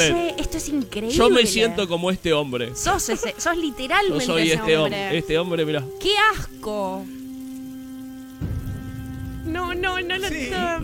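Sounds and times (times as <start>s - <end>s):
speech: 0.0s - 7.2s, 9.5s - 10.8s
steady rain hiss: 0.0s - 10.8s.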